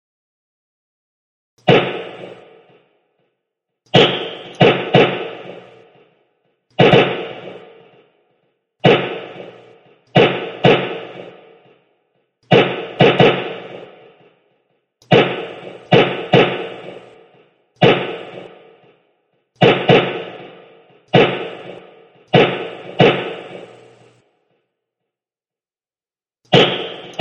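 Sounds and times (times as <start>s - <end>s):
rifle gunshots: 1.6s - 2.9s, 3.9s - 6.2s, 6.8s - 8.2s, 8.8s - 11.9s, 12.5s - 14.4s, 15.0s - 19.0s, 19.6s - 24.2s, 26.5s - 27.1s.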